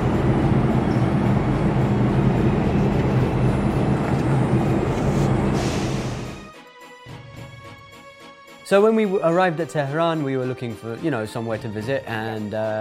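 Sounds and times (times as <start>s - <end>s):
loud steady low rumble of a train at a station: 0.0s - 6.5s
speech: 8.7s - 12.7s.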